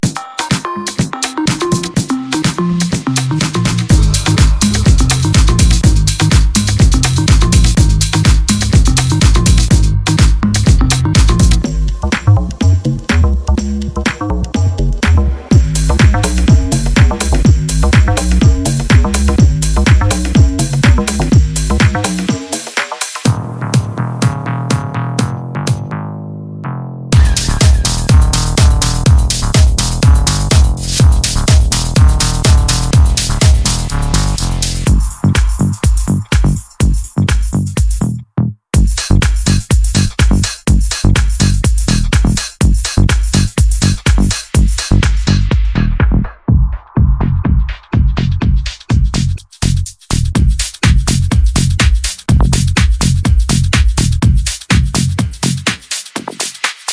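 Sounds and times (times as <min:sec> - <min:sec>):
classic drum loop: 0:00.0 - 0:26.0, 0:27.1 - 0:56.9.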